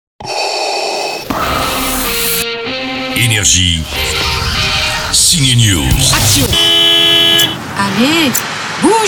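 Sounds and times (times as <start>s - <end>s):
rising-and-falling vocal sounds: 0.7s - 6.7s
street noise: 0.8s - 9.0s
speech: 3.4s - 4.2s, 5.2s - 6.5s, 7.8s - 9.0s
car horn honking: 5.8s - 8.0s.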